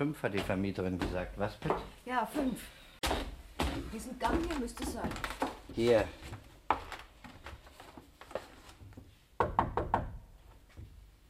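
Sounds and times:
speech: 0:00.0 - 0:06.4
knuckles knocking on a hotel room door: 0:09.4 - 0:10.2.

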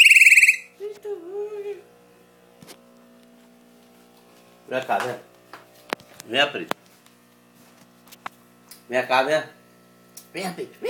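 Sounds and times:
chopi blackbird low wavering whistled note: 0:00.0 - 0:00.7
chopi blackbird rapid ringing trill: 0:00.0 - 0:00.7
speech: 0:04.7 - 0:05.3, 0:06.2 - 0:06.7, 0:08.9 - 0:09.6, 0:10.3 - 0:10.8.

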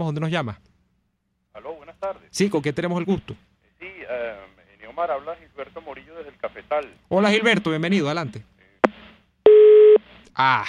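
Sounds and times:
speech: 0:00.0 - 0:00.7, 0:01.6 - 0:03.5, 0:04.3 - 0:08.5, 0:10.4 - 0:10.6
busy tone after a dropped phone call: 0:09.5 - 0:10.0.

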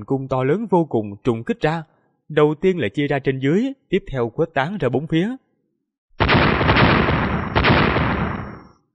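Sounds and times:
speech: 0:00.0 - 0:05.4
huge deep explosions: 0:06.2 - 0:08.8.

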